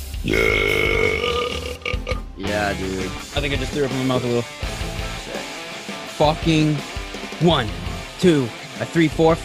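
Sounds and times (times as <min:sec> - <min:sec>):
long loud rumbling belch: 0:00.2 - 0:02.3
speech: 0:00.3 - 0:00.7, 0:02.7 - 0:04.7, 0:06.2 - 0:09.4.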